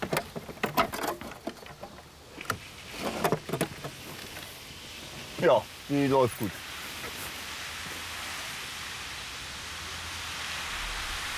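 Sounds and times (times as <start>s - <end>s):
water spraying from a shower hose: 2.6s - 11.3s
speech: 5.4s - 6.6s.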